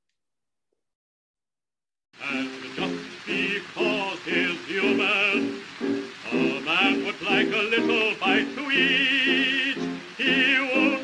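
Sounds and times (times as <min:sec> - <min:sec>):
hissy noise: 0:02.2 - 0:11.0
voice singing a recorded protest song with marching melody: 0:02.2 - 0:11.0
speech: 0:07.2 - 0:11.0.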